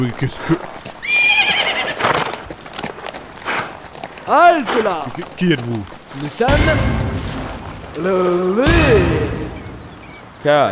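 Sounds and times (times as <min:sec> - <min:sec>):
speech: 0:00.0 - 0:00.8, 0:04.3 - 0:07.0, 0:08.0 - 0:09.3, 0:10.4 - 0:10.7
heavy hoof thuds and shuffling clopping: 0:00.0 - 0:10.7
horse giving a loud high trembling whinny: 0:01.0 - 0:02.4.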